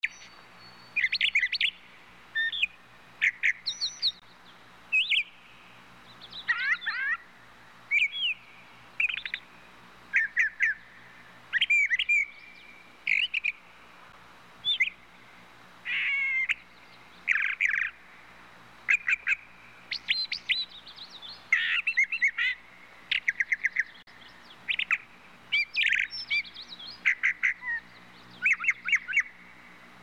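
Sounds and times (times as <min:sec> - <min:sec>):
brown thrasher singing: 0:00.0 - 0:13.8, 0:14.6 - 0:18.2, 0:18.9 - 0:29.9.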